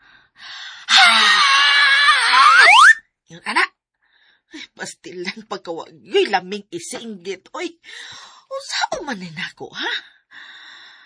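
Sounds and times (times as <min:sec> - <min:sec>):
person screaming: 0:00.9 - 0:03.0
speech: 0:04.8 - 0:10.1.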